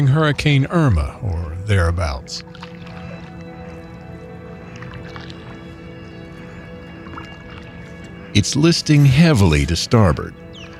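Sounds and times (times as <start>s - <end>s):
speech: 0.0s - 2.7s, 8.4s - 10.4s
soft water sloshing and splashes: 1.0s - 8.3s
paddle strokes dipping into water beside a small boat in a bay: 2.4s - 4.0s, 4.7s - 5.7s.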